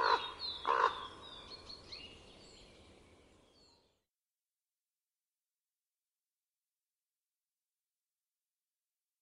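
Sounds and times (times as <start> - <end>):
Common raven croaking in winter in Estonia: 0.0 - 1.2.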